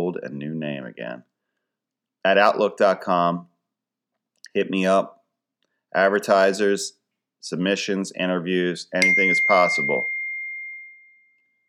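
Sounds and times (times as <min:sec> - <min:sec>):
speech: 0:00.2 - 0:01.3, 0:02.2 - 0:03.5, 0:04.5 - 0:05.2, 0:05.9 - 0:10.1
bell ding: 0:09.0 - 0:11.6.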